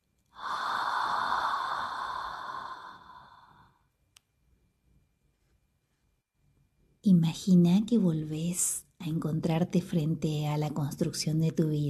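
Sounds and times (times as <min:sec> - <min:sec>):
slow exhalation of breath: 0:00.3 - 0:03.8
speech: 0:07.0 - 0:11.8.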